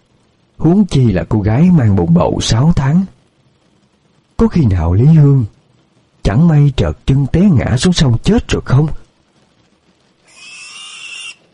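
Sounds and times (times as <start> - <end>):
speech: 0.6 - 3.2, 4.4 - 5.6, 6.3 - 9.0
pigs squealing loudly at a village livestock area: 10.2 - 11.5.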